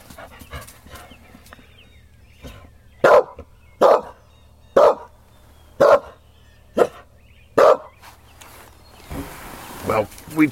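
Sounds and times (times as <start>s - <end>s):
low hum: 0.0s - 10.5s
dog barking: 3.0s - 4.2s, 4.8s - 5.1s, 5.8s - 6.2s, 6.8s - 8.0s
speech: 10.0s - 10.5s.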